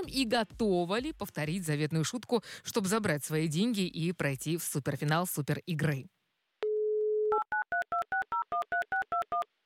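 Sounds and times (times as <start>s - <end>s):
speech: 0.0s - 6.2s
telephone dial tone: 6.6s - 9.4s.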